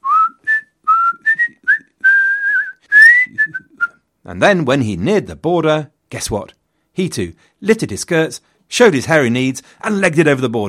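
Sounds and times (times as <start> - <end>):
person whistling a casual tune: 0.0 - 4.0
speech: 4.3 - 10.6.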